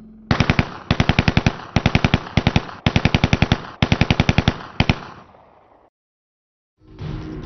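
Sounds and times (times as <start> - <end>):
DShK heavy machine gun firing bursts: 0.3 - 5.2.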